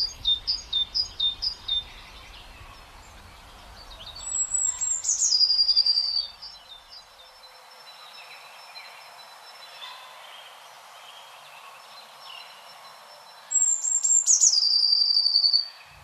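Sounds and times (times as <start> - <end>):
blue tit singing: 0.0 - 7.1, 13.5 - 16.0
great tit singing: 0.0 - 16.0.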